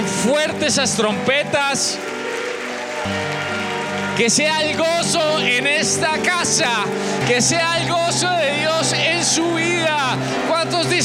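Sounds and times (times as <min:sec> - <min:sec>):
church audience applauding: 0:00.0 - 0:11.0
speech: 0:00.2 - 0:02.2, 0:04.2 - 0:11.0
sustained musical tones: 0:01.0 - 0:11.0.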